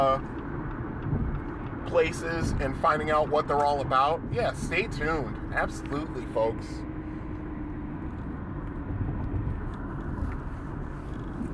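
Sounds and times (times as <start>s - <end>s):
speech: 0.0s - 0.4s, 1.8s - 6.9s
car engine and tire drone cruising on a highway: 0.0s - 11.5s.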